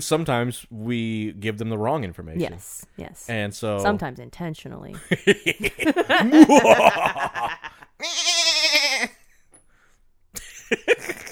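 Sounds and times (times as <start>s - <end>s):
speech: 0.0s - 8.3s, 10.7s - 11.2s
laughter: 5.0s - 7.9s, 10.4s - 11.3s
goat bleating: 8.0s - 9.2s.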